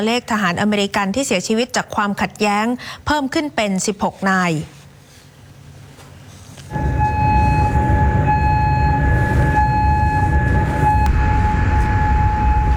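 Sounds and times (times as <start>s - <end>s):
speech: 0.0s - 4.8s
air raid siren during an attack on military targets: 6.7s - 12.7s
dense low rumble: 6.7s - 12.7s.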